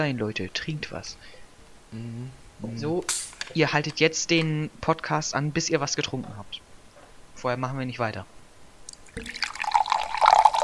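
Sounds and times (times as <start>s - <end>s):
speech: 0.0s - 6.7s, 7.4s - 8.4s, 9.2s - 9.6s
liquid pouring into a glass: 8.9s - 10.6s.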